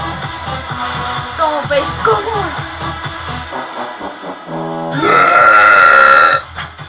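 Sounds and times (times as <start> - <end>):
speech: 1.4 - 2.7
loud drawn-out burp: 4.9 - 6.5.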